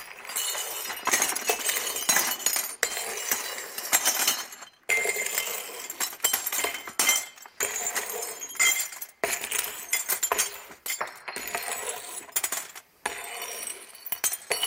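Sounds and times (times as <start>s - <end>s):
broken glass shards clinking and scraping: 0.0s - 14.6s.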